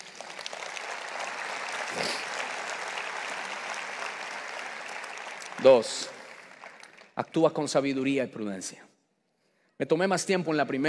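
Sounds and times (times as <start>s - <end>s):
audience applauding during a sermon: 0.0s - 7.8s
speech: 5.6s - 6.1s, 7.2s - 8.9s, 9.8s - 10.8s.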